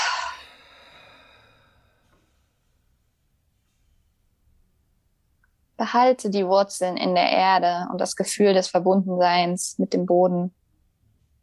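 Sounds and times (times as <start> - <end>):
deep breath out through the mouth: 0.0 - 2.5
speech: 5.8 - 10.6.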